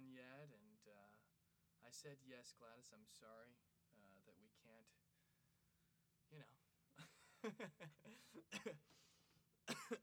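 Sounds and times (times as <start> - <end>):
speech: 0.2 - 5.1, 6.3 - 9.1, 9.7 - 10.0
person coughing in harsh hacks: 8.5 - 8.8, 9.7 - 10.0.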